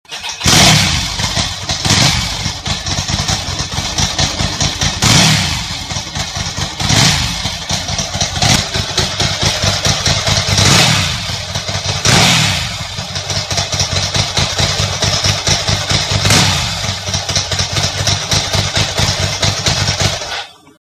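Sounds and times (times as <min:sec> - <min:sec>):
stock Ducati M900 motorcycle engine: 0:00.0 - 0:20.7.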